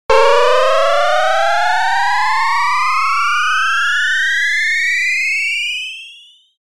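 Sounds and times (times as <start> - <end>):
attack meter rising effect: 0.1 - 5.3.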